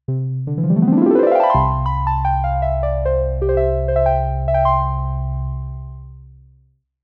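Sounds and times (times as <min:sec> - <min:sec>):
Jupiter 8 synth harp: 0:00.5 - 0:05.9.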